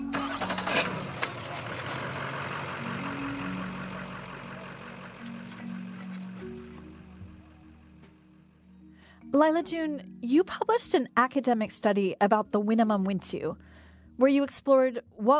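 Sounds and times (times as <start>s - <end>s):
truck engine cranking, starting and idling: 0.0s - 8.6s
speech: 9.4s - 15.3s.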